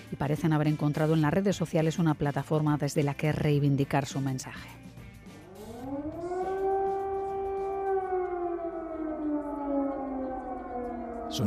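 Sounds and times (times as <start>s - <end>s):
speech: 0.1s - 4.9s
air raid siren wailing in Ukraine during the war: 5.4s - 11.4s.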